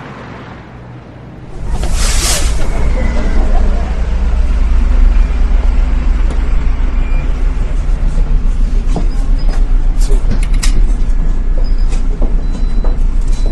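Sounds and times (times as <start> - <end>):
street traffic rumble: 0.0 - 13.5
vehicle whooshing past: 1.3 - 5.8.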